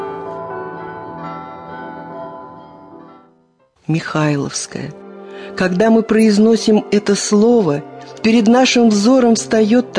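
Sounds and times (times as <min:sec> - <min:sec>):
heavy monastery church bells ringing in a peal: 0:00.0 - 0:03.5
speech: 0:03.9 - 0:09.9.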